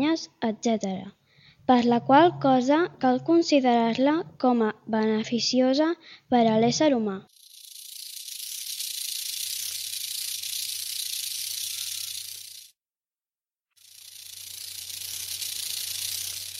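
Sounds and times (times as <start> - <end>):
speech: 0.0 - 7.3
water snake hissing: 7.3 - 12.8, 13.8 - 16.5.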